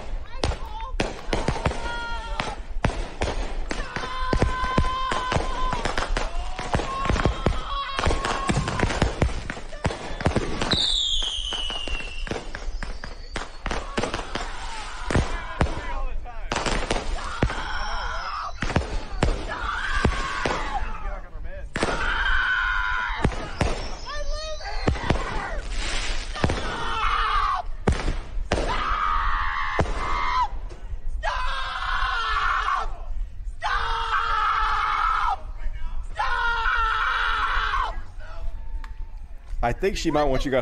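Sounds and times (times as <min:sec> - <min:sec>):
raised voices: 0:00.0 - 0:11.0, 0:11.6 - 0:40.6
fireworks cracking and popping: 0:00.0 - 0:21.0, 0:21.7 - 0:30.8
speech: 0:39.7 - 0:40.6.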